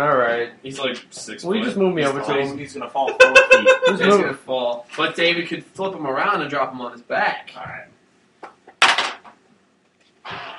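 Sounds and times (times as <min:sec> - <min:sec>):
speech: 0:00.0 - 0:07.9
laughter: 0:03.0 - 0:04.2
die being fiddled with on a table: 0:08.7 - 0:09.4.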